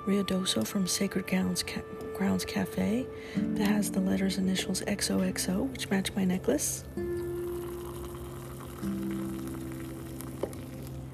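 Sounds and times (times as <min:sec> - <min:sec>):
speech: 0:00.0 - 0:07.2
liquid pouring from a teapot into a cup: 0:07.1 - 0:11.1.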